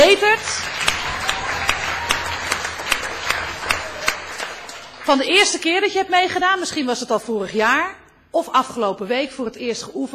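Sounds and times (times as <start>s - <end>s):
audience applause from a group: 0.0s - 5.1s
speech: 5.1s - 10.1s.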